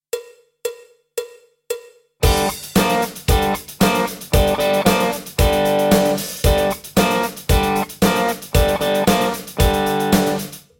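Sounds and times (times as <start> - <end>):
rock lick on electric guitar: 2.2 - 10.6.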